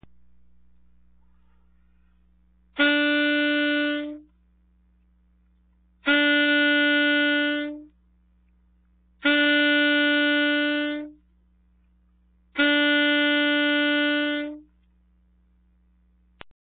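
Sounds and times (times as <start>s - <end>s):
saxophone attack: 2.8s - 4.3s, 6.0s - 7.9s, 9.2s - 11.2s, 12.6s - 14.7s.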